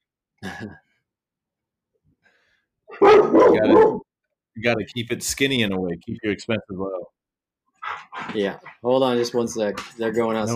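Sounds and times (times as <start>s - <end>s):
speech: 0.6s - 0.9s, 3.0s - 4.0s, 4.6s - 7.2s, 7.9s - 10.5s
dog barking: 2.9s - 4.1s.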